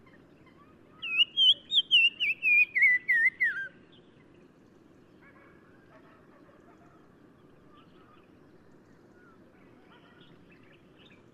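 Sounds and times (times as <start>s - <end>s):
black-crowned tchagra whistled calls in Morocco: 1.0s - 3.8s.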